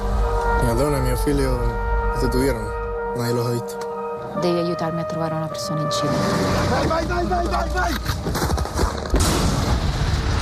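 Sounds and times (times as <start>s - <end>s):
speech: 0.8s - 8.2s
bombs exploding in a film soundtrack: 8.2s - 10.3s.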